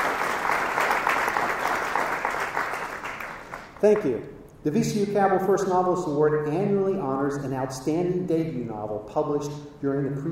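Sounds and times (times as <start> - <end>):
room full of people clapping: 0.0 - 4.2
speech: 3.8 - 10.3.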